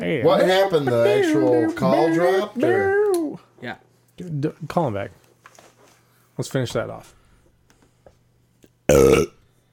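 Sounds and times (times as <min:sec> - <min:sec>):
speech: 0:00.1 - 0:05.2, 0:06.4 - 0:07.2, 0:08.9 - 0:09.3
loud deep rumbling burp: 0:08.9 - 0:09.4.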